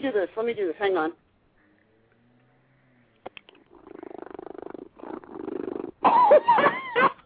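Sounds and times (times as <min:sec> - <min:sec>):
speech: 0:00.0 - 0:01.3, 0:06.0 - 0:07.1
cat purring loudly: 0:03.3 - 0:06.1.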